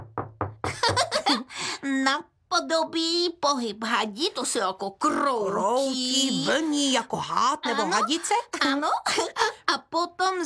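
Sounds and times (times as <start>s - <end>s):
hand knocking with dull low thumps: 0.0s - 1.3s
speech: 1.8s - 10.4s
voice sounds: 4.8s - 9.0s.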